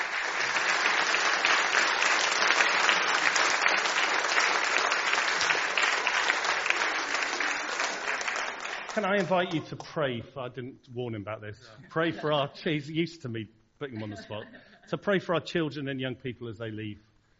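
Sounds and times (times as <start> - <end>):
sizable crowd applauding: 0.0 - 9.6
speech: 9.0 - 17.1
laughter: 11.8 - 12.7, 13.9 - 15.0.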